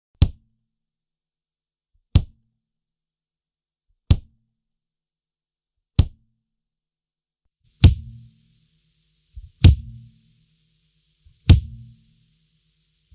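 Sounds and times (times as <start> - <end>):
drum kit kick drum: 2.2 - 2.4, 4.1 - 4.4, 6.0 - 6.2, 7.8 - 8.3, 9.4 - 10.2, 11.4 - 12.0.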